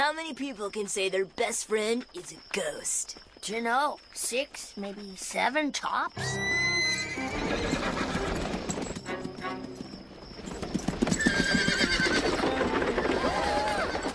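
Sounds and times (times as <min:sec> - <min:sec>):
speech: 0:00.0 - 0:06.6
horse hooves clip-clopping: 0:00.2 - 0:14.1
horse whinnying loudly: 0:06.2 - 0:08.6, 0:11.0 - 0:14.1.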